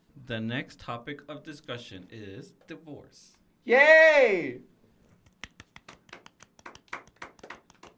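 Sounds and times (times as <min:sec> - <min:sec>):
speech: 0:00.3 - 0:04.7
small group giving soft polite golf clap: 0:05.4 - 0:07.9.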